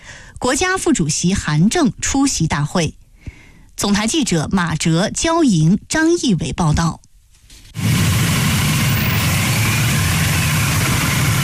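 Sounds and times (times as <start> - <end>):
speech: 0.4 - 3.0, 3.8 - 7.0
ceremonial car motorcade with motorcycle escort engines roaring: 7.8 - 11.4.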